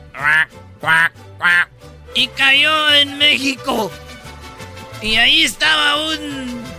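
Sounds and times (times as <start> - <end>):
duck quacking loud and nasal: 0.0 - 1.8
speech: 0.2 - 4.1, 5.0 - 6.7.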